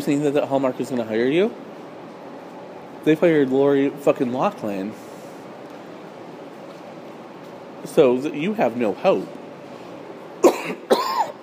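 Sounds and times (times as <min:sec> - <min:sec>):
speech: 0:00.0 - 0:01.7, 0:03.0 - 0:05.0, 0:07.9 - 0:09.4
harsh raspy coughs: 0:10.4 - 0:11.4.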